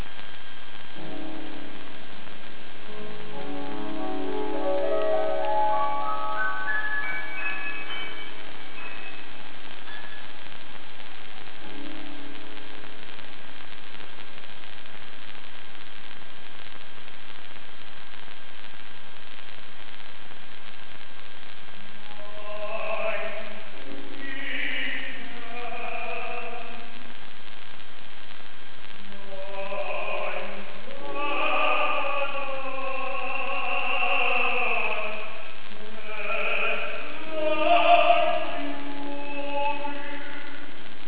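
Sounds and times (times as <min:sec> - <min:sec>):
singer at a concert in Tokyo: 0:02.9 - 0:10.1, 0:22.1 - 0:27.1, 0:29.2 - 0:41.0.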